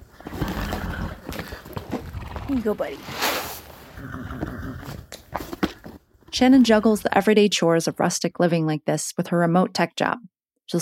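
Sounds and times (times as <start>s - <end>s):
horse whinnying: 0.1s - 5.1s
speech: 2.5s - 3.3s, 4.0s - 5.1s, 6.4s - 10.8s.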